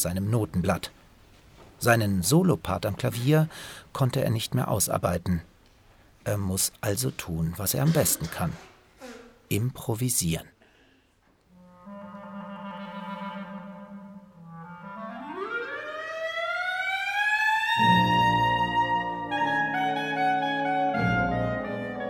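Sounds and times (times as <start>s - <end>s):
speech: 0.0s - 1.0s, 1.8s - 5.5s, 6.2s - 10.6s
clarinet trill and glissando rising upward: 11.6s - 22.0s.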